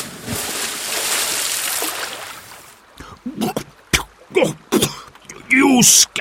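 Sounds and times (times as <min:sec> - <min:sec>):
man falling into a river splash: 0:00.0 - 0:02.6
river water sloshing and churning: 0:00.0 - 0:05.5
speech: 0:04.4 - 0:04.7, 0:05.6 - 0:06.1.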